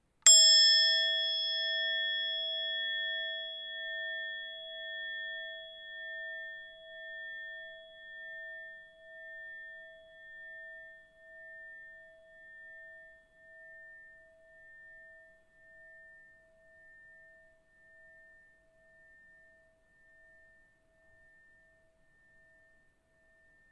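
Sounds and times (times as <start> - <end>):
metal ball striking singing bowls of singing bowl clocks: 0.3 - 6.8.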